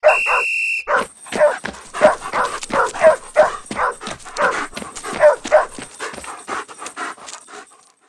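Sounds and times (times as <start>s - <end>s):
guard starting to run and stumbling: 0.9s - 7.1s.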